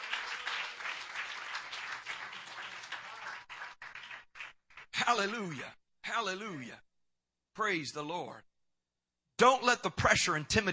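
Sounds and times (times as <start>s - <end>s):
crowd clapping hands to the Lord: 0.0s - 5.7s
speech: 5.1s - 6.9s, 7.6s - 8.5s, 9.4s - 10.7s.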